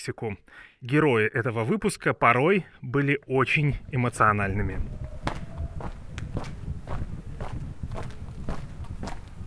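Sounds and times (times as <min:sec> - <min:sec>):
speech: 0:00.0 - 0:05.2
footsteps walking on narrow streets in Tbilisi: 0:05.1 - 0:09.4.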